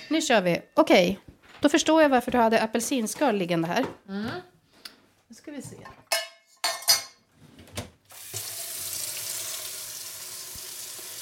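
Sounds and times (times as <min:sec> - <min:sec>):
speech: 0:00.1 - 0:04.5, 0:05.3 - 0:06.0
dishes and cookware clinking: 0:05.8 - 0:07.3
water pouring from teacups into a pan: 0:08.1 - 0:11.2.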